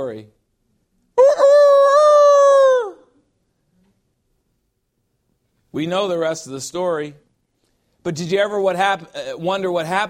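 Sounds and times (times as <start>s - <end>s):
speech: 0.0s - 0.4s, 5.7s - 7.3s, 8.0s - 10.0s
rooster crowing: 1.2s - 3.2s.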